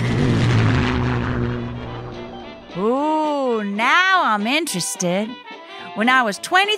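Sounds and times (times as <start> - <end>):
propeller airplane droning overhead: 0.0 - 3.2
speech: 3.8 - 6.7.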